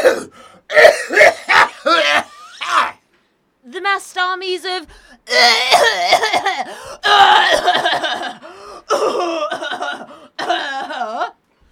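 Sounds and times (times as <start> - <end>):
person clearing throat: 0.0 - 2.3, 5.3 - 11.4
person coughing: 0.0 - 2.4, 5.3 - 11.4
speech: 4.1 - 8.4.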